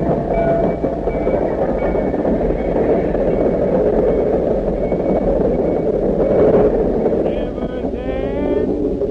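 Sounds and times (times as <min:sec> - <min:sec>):
high-pitched train brake squeals: 0:00.0 - 0:09.1
train rolling into a station: 0:00.0 - 0:09.1
faint voices murmuring: 0:07.2 - 0:08.8.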